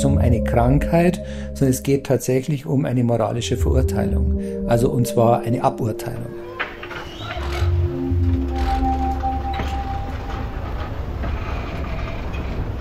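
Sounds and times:
speech: 0:00.3 - 0:06.5
train rolling along rails with rhythmic clatter: 0:06.6 - 0:12.7.

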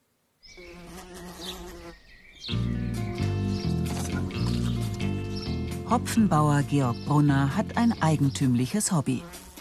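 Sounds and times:
housefly buzzing: 0:00.5 - 0:05.8, 0:08.5 - 0:09.6
speech: 0:02.4 - 0:03.1, 0:05.9 - 0:09.4.

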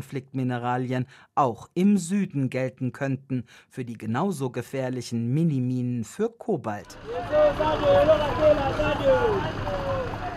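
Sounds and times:
speech: 0:00.0 - 0:09.9
heavy rush-hour traffic of cars, buses and trucks crawling around a bend in Kolwezi: 0:06.8 - 0:10.3.

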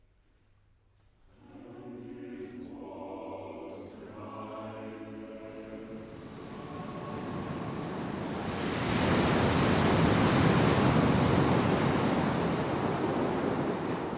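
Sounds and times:
loud roaring sea surf with foaming raging waves: 0:04.0 - 0:14.1.

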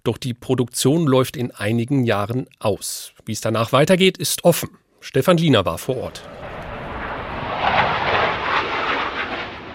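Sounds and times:
speech: 0:00.0 - 0:06.5
Eurofighter jet flying low overhead: 0:06.1 - 0:09.7.

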